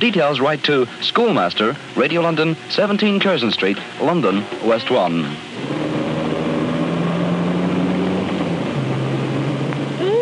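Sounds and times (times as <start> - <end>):
speech: 0.0 - 5.9
car engine droning, shifting and revving as it pulls away: 4.0 - 10.1.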